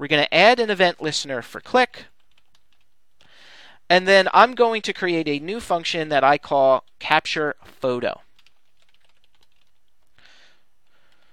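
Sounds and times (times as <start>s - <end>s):
speech: 0.0s - 2.1s, 3.9s - 8.2s
rapid keystrokes on a computer keyboard typing JavaScript code: 1.7s - 3.3s, 8.3s - 11.3s.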